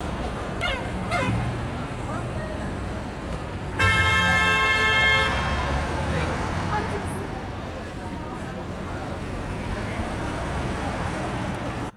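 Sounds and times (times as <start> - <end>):
city traffic: 0.0 - 11.9
loud car horns: 0.6 - 1.5, 3.8 - 6.1.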